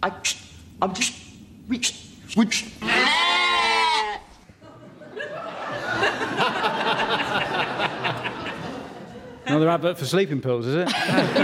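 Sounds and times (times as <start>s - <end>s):
speech: 0.0s - 3.0s, 9.6s - 11.4s
sheep bleating: 2.8s - 4.3s
laughter: 4.6s - 9.7s, 10.8s - 11.4s.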